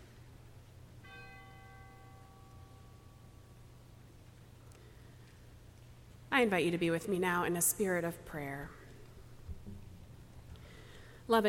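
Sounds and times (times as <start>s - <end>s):
steady low hum: 0.0s - 11.4s
memorial bell chime: 1.0s - 3.4s
speech: 6.4s - 8.8s, 11.3s - 11.4s.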